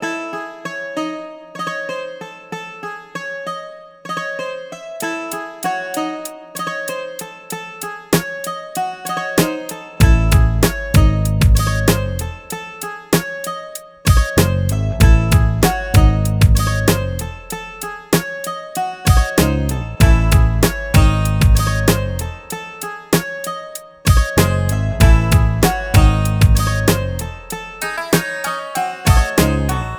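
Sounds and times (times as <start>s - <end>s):
exotica hip hop beat in A minor: 8.2s - 12.6s, 13.2s - 29.9s.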